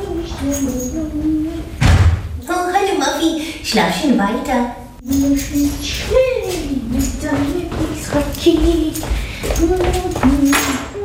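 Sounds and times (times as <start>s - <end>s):
speech: 0.4s - 1.4s, 2.9s - 10.8s
door bumping shut with a heavy thud: 1.8s - 2.4s.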